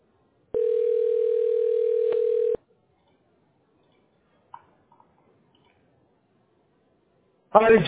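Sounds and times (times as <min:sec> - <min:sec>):
telephone ringing tone during call transfer: 0:00.5 - 0:02.6
speech: 0:07.6 - 0:07.8.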